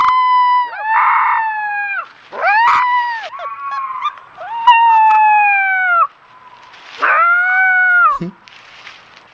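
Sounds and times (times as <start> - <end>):
four-week-old wolf pup howling: 0.0 - 6.1, 7.0 - 8.2.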